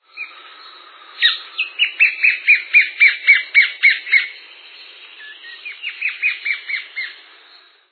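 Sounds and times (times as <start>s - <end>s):
white-flanked antwren: 0.0s - 7.8s.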